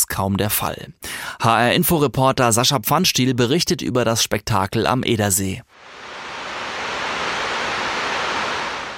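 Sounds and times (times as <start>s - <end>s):
speech: 0.1s - 6.0s
water roaring over dam spillway: 5.8s - 8.9s.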